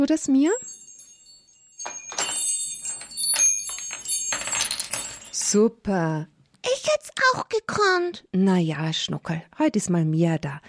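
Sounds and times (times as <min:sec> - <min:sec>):
speech: 0:00.0 - 0:00.7, 0:05.5 - 0:10.6
small handbell ringing: 0:00.5 - 0:05.6.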